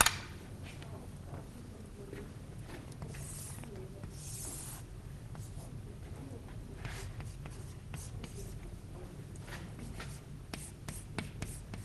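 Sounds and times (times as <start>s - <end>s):
steady low hum: 0.0s - 11.8s
writing on a board: 3.0s - 5.7s, 6.8s - 8.6s, 9.5s - 11.8s.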